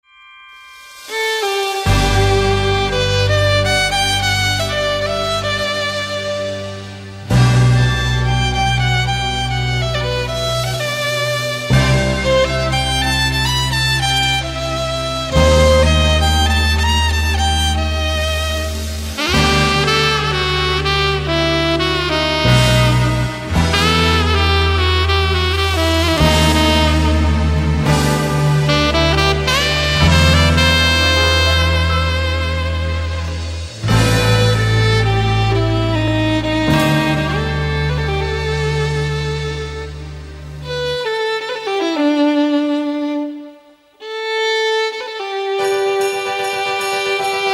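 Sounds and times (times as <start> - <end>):
saxophone: 0.7 - 47.5
violin: 0.9 - 47.5.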